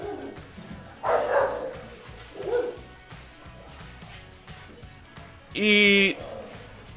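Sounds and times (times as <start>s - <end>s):
sharp dog barks: 0.0s - 0.4s, 1.0s - 2.9s, 6.1s - 6.6s
speech: 5.6s - 6.0s.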